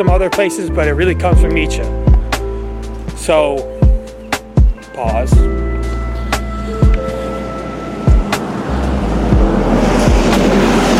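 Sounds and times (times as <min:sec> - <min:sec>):
speech: 0:00.0 - 0:02.1, 0:03.2 - 0:03.7, 0:05.0 - 0:05.7
school bus engine drone: 0:05.4 - 0:10.9.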